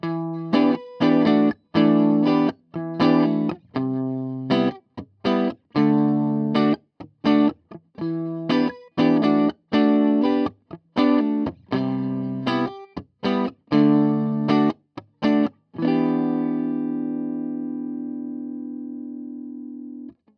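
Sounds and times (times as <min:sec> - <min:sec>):
clean guitar tone through a two-by-twelve guitar amplifier: 0:00.0 - 0:20.2.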